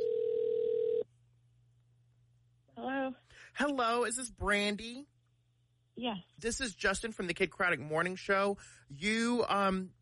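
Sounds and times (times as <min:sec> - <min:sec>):
buzzy electronic telephone ringback tone: 0:00.0 - 0:01.0
speech: 0:03.5 - 0:05.1, 0:06.0 - 0:10.0.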